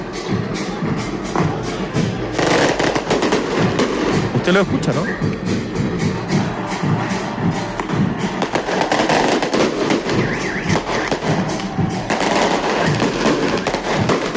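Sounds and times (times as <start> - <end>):
fireworks crackling and banging: 0.0 - 14.3
speech: 4.5 - 5.6.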